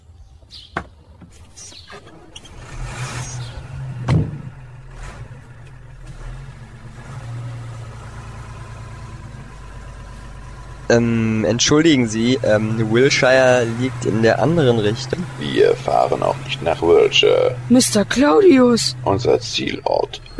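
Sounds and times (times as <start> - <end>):
faint bird chirps: 0.0 - 2.6, 19.6 - 20.3
van engine idling: 0.0 - 20.3
thump: 4.0 - 4.5
speech: 10.9 - 20.3.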